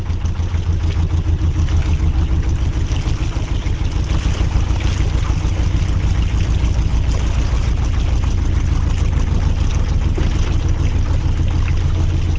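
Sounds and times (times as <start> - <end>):
canal barge diesel engine chugging in Birmingham: 0.0 - 12.3
faint watery wash: 0.0 - 12.3.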